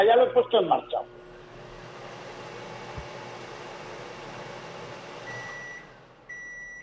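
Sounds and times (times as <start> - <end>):
speech: 0.0 - 1.2
oscilloscope electronic beep: 5.3 - 6.8.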